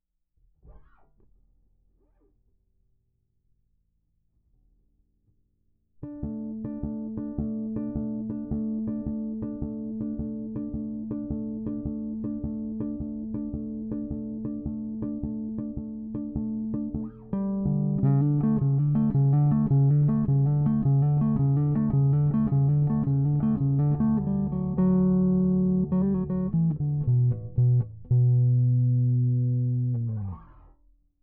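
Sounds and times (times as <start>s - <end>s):
bass outro: 6.0s - 30.5s.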